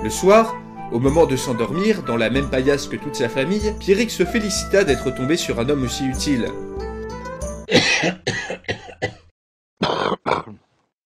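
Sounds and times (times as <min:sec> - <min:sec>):
speech: 0:00.0 - 0:06.8, 0:07.7 - 0:08.5
man's harsh coughing fit: 0:07.7 - 0:10.6.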